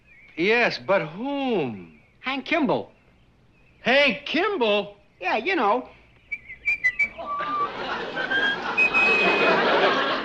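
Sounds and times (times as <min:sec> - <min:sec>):
speech: 0:00.4 - 0:03.0, 0:03.8 - 0:06.0
person whistling a tune: 0:06.3 - 0:07.7, 0:08.3 - 0:09.6
laughter: 0:07.0 - 0:10.2.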